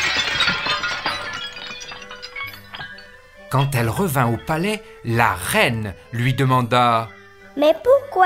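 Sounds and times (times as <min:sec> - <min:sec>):
pieces of a broken water pot clinking and rattling: 0:00.0 - 0:04.4
water pot smashing: 0:00.0 - 0:04.7
speech: 0:03.5 - 0:08.2.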